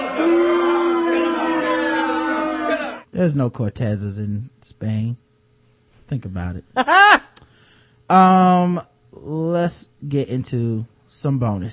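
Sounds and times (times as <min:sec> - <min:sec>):
crowd groaning or booing in displeasure: 0:00.0 - 0:03.0
speech: 0:03.2 - 0:05.2, 0:06.1 - 0:07.2, 0:08.1 - 0:11.7
laughter: 0:06.8 - 0:07.3.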